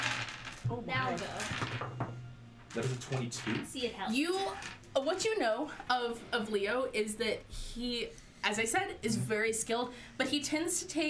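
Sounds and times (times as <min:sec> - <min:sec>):
dice tumbling and clattering across a tabletop: 0:00.0 - 0:02.1, 0:04.4 - 0:04.8
speech: 0:00.7 - 0:02.0, 0:02.8 - 0:11.0.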